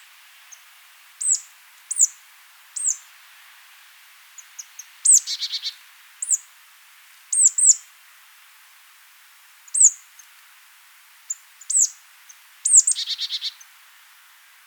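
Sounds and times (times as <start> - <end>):
marsh tit calling: 1.2 - 2.1, 2.8 - 3.0, 4.4 - 6.4, 9.7 - 10.0, 11.3 - 11.9, 12.6 - 13.7.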